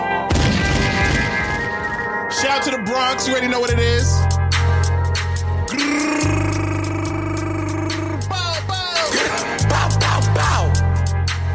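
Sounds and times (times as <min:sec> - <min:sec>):
dense low-end music: 0:00.2 - 0:11.5
loud gunshot sound effect booming: 0:00.3 - 0:02.2
speech: 0:02.5 - 0:04.3.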